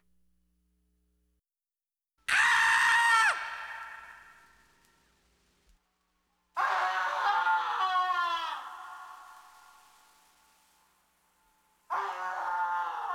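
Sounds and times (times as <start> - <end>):
various screams: 2.3 - 4.6, 6.6 - 10.0, 11.9 - 13.1.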